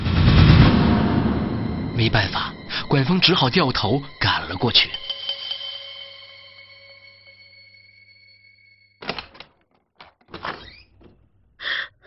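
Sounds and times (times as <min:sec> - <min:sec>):
faint steady tonal note: 0:00.7 - 0:09.0
speech: 0:02.0 - 0:05.0
door opening with clicks and clunks: 0:09.0 - 0:11.4.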